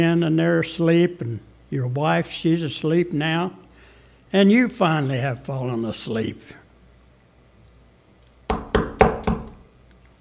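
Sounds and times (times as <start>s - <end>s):
speech: 0.0s - 3.6s, 4.3s - 6.6s
loud knocks on a door: 8.5s - 9.6s.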